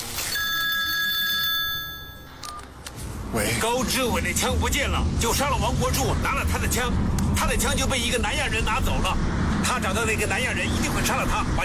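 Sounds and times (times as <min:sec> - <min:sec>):
telephone ringing with a bright electronic tone: 0:00.2 - 0:02.7
speech: 0:03.3 - 0:11.6.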